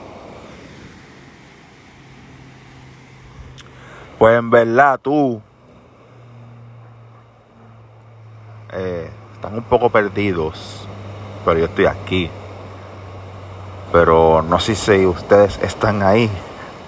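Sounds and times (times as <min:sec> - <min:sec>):
sea waves washing with a low roar: 0:00.0 - 0:16.8
wind: 0:00.0 - 0:16.8
speech: 0:04.2 - 0:05.5, 0:09.6 - 0:12.4, 0:13.9 - 0:16.5.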